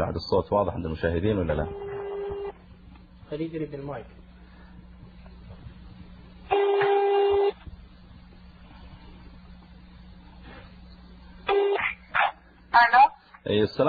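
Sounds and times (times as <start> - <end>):
faint low hum: 0.0 - 13.8
speech: 0.1 - 1.9, 3.3 - 4.2, 12.7 - 13.8
telephone ringing tone on a landline call: 1.5 - 2.6, 6.5 - 7.6, 11.5 - 11.8.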